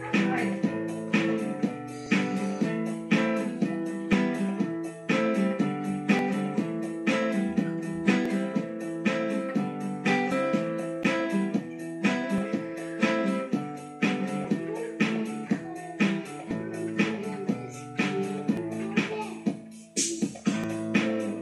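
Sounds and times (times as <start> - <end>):
piano: 0.0 - 19.7
guitar: 0.0 - 21.4.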